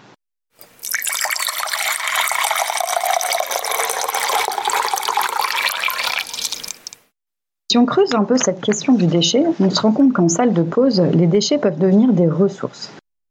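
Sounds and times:
water pouring from a carafe or water fountain into a container: 0.6 - 7.0
speech: 7.7 - 13.0.

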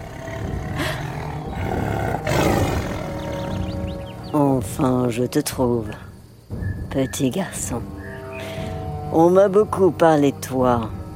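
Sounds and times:
tiger roaring: 0.0 - 3.5
speech: 4.6 - 6.1, 6.9 - 8.5, 9.1 - 11.0.

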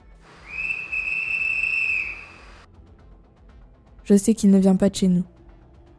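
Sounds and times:
sharp high-pitched whistle blast: 0.4 - 2.7
speech: 4.1 - 5.4.

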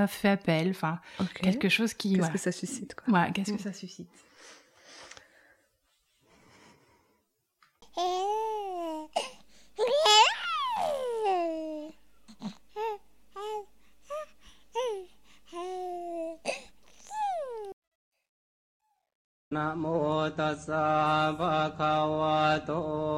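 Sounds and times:
speech: 0.0 - 4.6, 19.6 - 23.0
baby babbling and cooing: 7.8 - 17.8.

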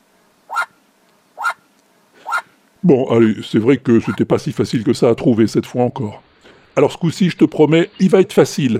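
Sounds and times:
group of Australian magpies calling harshly: 0.5 - 0.8, 1.4 - 2.6, 4.0 - 4.2
speech: 2.8 - 8.7.

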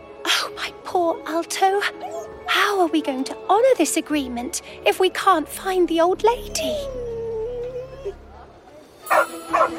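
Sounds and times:
speech: 0.6 - 7.0, 9.1 - 9.7
dog barking: 9.1 - 9.7.

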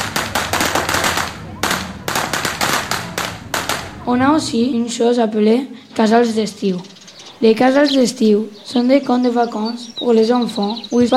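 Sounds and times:
string of firecrackers exploding at the San Juan festival: 0.0 - 4.4
speech: 4.1 - 11.1.

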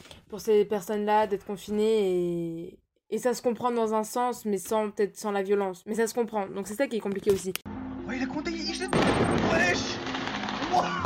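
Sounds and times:
speech: 0.3 - 7.7
crackling firework explosions and bangs: 8.9 - 11.0
sudden loud firework blast: 8.9 - 11.0.

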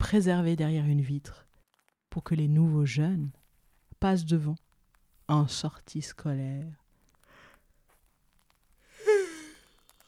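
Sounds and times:
speech: 0.1 - 1.5, 2.1 - 3.4, 4.0 - 4.6, 5.3 - 6.8
person yawning: 8.9 - 9.7.

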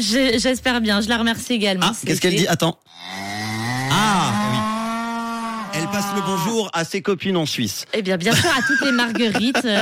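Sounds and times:
speech: 0.0 - 3.2, 6.0 - 9.8
cow mooing: 2.9 - 6.5
laughter: 8.3 - 9.8.

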